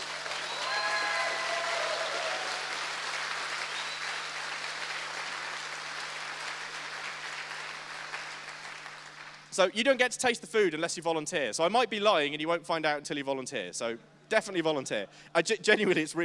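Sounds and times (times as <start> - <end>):
audience applause from a sizable crowd: 0.0 - 9.5
faint whoops and whistles: 0.4 - 2.5, 3.7 - 4.3
speech: 9.6 - 16.2.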